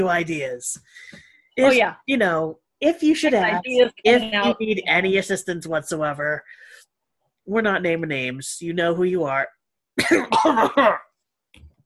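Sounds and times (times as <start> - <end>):
speech: 0.0 - 6.8, 7.5 - 11.7
person coughing loudly: 10.0 - 11.1.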